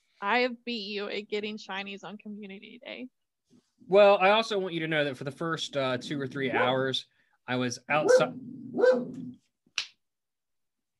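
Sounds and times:
speech: 0.2 - 3.2, 3.9 - 9.4
dog barking: 8.0 - 9.2.

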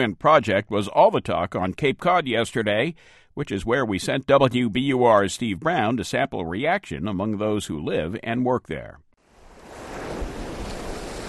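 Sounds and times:
speech: 0.0 - 9.1
waves crashing on the shore on Cape Cod: 9.2 - 11.2
gusty wind on the shore of Cape Cod: 9.3 - 11.2.

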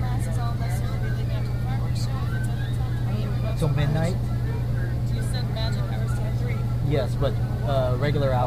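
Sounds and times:
indistinct passenger chatter: 0.0 - 8.4
loud low engine drone inside a moving bus: 0.0 - 8.4
speech: 3.6 - 4.3, 6.9 - 8.4.

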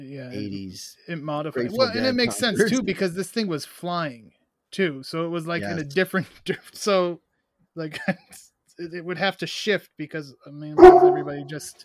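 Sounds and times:
speech: 0.0 - 7.2, 7.8 - 11.8
laughter: 1.6 - 3.0, 5.6 - 6.6, 7.8 - 8.4
dog barking: 10.8 - 11.5.

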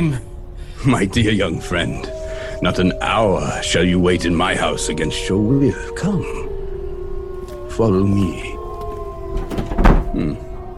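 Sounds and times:
speech: 0.0 - 6.6, 7.8 - 8.6, 9.6 - 10.5
faint hum: 0.0 - 10.7
heavy bolted door rattling against its bolt: 9.3 - 10.1.

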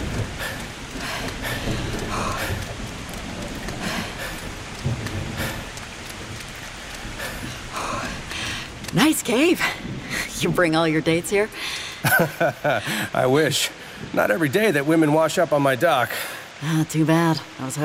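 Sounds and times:
low rolling rumble of thunder: 0.0 - 12.7
steady dense rain hissing: 0.0 - 17.8
speech: 9.0 - 9.8, 10.4 - 17.8
laughter: 12.0 - 13.1.

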